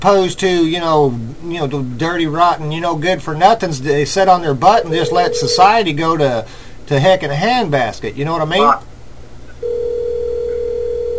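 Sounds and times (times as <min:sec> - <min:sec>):
speech: 0:00.0 - 0:08.9
low hum: 0:00.0 - 0:11.1
telephone ringing with an incoming call: 0:04.8 - 0:05.9, 0:09.6 - 0:11.1.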